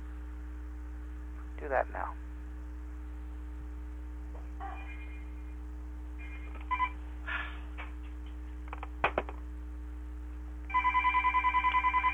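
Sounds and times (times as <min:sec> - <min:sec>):
low hum: 0:00.0 - 0:12.1
speech: 0:01.6 - 0:02.2
telephone ringing in rapid electronic trills: 0:06.2 - 0:07.0, 0:10.7 - 0:12.1.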